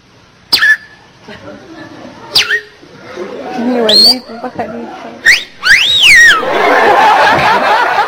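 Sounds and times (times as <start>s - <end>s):
person whistling birdlike calls imitating a flirtatious female bird: 0.5s - 0.9s, 2.4s - 2.7s, 5.2s - 6.4s
laughter: 1.2s - 2.3s, 6.3s - 8.0s.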